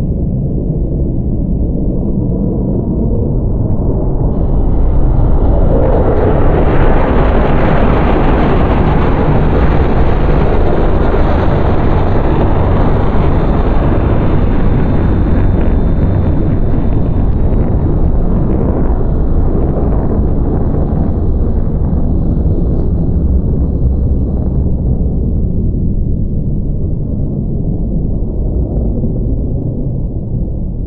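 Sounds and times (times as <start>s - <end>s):
destroyer flyer vehicle: 0.1s - 30.7s.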